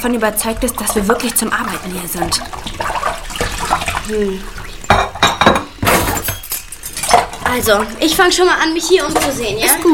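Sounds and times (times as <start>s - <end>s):
speech: 0.0s - 2.9s, 4.1s - 5.0s, 7.5s - 9.9s
running water splashing while rinsing glasses: 0.0s - 9.9s
drinking glasses clinking against each other: 4.9s - 7.4s.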